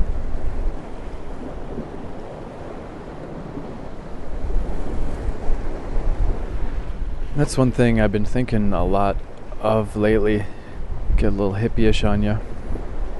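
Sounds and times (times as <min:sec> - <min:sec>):
low wind rumble: 0:00.0 - 0:13.1
ocean waves breaking on rocks: 0:00.0 - 0:13.1
speech: 0:07.4 - 0:10.6, 0:11.2 - 0:12.6.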